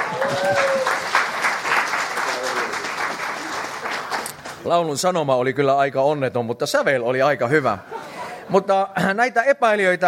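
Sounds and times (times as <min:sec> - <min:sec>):
audience clapping: 0:00.0 - 0:04.7
speech: 0:04.6 - 0:10.0.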